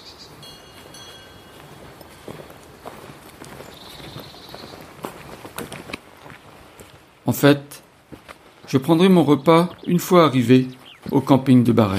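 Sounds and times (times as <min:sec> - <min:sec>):
steady outdoor hiss: 0:00.0 - 0:11.9
bells clanking on two red cows lounging below a path: 0:00.4 - 0:03.8
speech: 0:07.3 - 0:07.8, 0:08.7 - 0:11.9.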